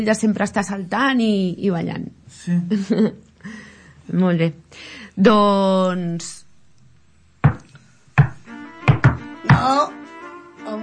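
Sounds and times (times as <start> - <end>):
speech: 0.0 - 6.4, 9.6 - 10.0
knocking on a door: 7.4 - 9.7.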